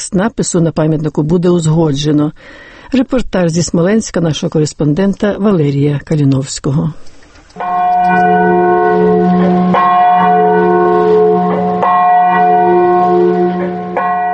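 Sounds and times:
speech: 0.1 - 9.1
heavy memorial church bell tolling: 7.6 - 14.3.

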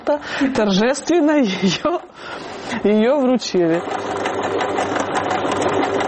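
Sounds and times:
speech: 0.1 - 4.6
sewing machine sewing Ukrainian flags: 1.9 - 6.0.

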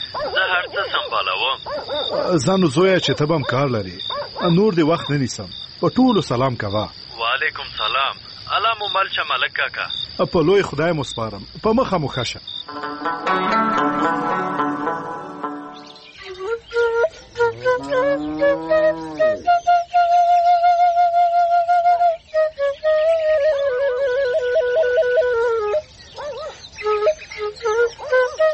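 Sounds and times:
speech: 0.2 - 13.5
shepherd's flute playing a melody: 12.7 - 28.5.

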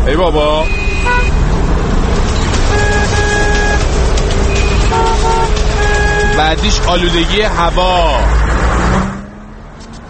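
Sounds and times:
rumble of engines and road noise in city traffic: 0.0 - 10.0
speech: 0.1 - 1.4, 6.4 - 8.6
car horns honking in congested city traffic: 0.3 - 1.7, 2.3 - 8.2.

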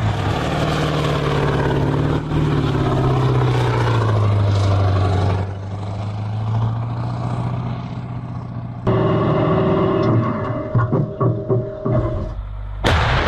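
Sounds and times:
heavy engine idling: 0.0 - 13.1.

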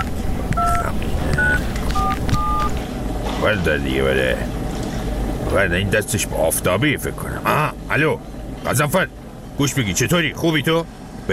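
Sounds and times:
telephone keypad dialing tones: 0.0 - 2.8
constant hum: 0.0 - 11.3
speech: 3.4 - 4.6, 5.5 - 11.0.

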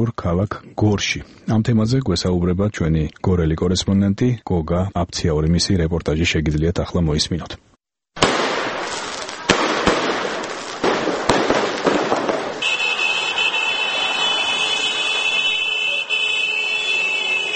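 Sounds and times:
speech: 0.0 - 7.7
fireworks bursting: 8.2 - 17.5.

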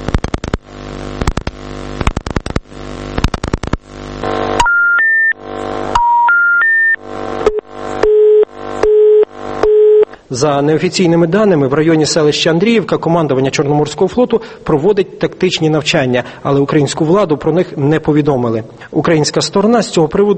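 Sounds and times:
buzzy harsh tones: 2.0 - 6.2, 7.0 - 11.6
telephone busy signal: 4.2 - 10.1
telephone dialing tones: 6.0 - 10.1
speech: 10.3 - 20.3.

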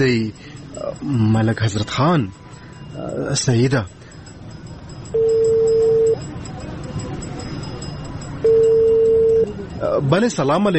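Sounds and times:
speech: 0.0 - 4.0, 9.8 - 10.7
ringing tone of an outgoing phone call: 5.1 - 6.3, 8.4 - 9.6.

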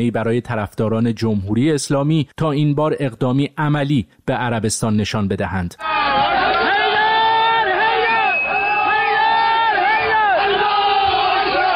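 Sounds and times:
speech: 0.0 - 6.3
crowd of attackers shouting and chanting in jubilation while storming an embassy: 5.8 - 11.7.

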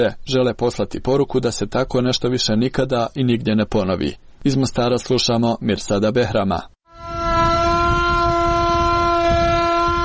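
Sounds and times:
speech: 0.0 - 6.8
air raid siren sounding the general danger alarm at a commemoration in Mostar: 6.9 - 10.0.

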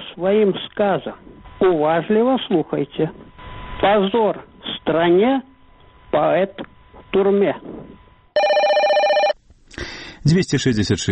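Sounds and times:
speech: 0.2 - 3.2, 3.8 - 5.5, 6.1 - 8.0, 10.2 - 11.1
answering-machine telephone line in Minsk ringing: 8.4 - 9.4.

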